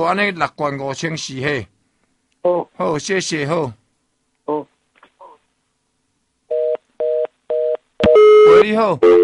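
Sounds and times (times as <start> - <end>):
speech: 0.0 - 1.7, 2.4 - 3.8, 8.6 - 9.2
telephone line tone beeps signalling a call not getting through: 6.5 - 9.2.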